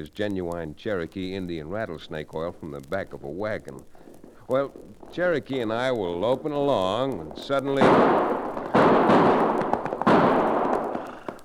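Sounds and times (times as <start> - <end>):
speech: 0.0 - 8.5
gunshots with long rumbling echo: 5.6 - 11.4.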